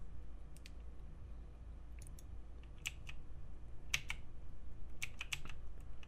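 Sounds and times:
steady low hum: 0.0 - 6.0
computer keyboard keystrokes: 2.0 - 3.2, 3.9 - 4.2, 5.0 - 6.0.

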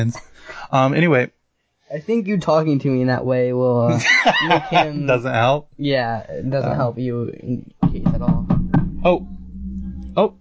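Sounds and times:
speech: 0.0 - 9.3, 10.2 - 10.4
laughter: 3.9 - 5.2
steady low hum: 6.3 - 10.4
quick knocks on a door: 7.8 - 9.2.

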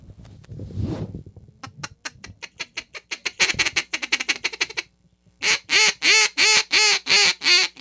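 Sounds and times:
Duck Commander Pro Series double reed duck call blown in quacks: 2.0 - 7.7.

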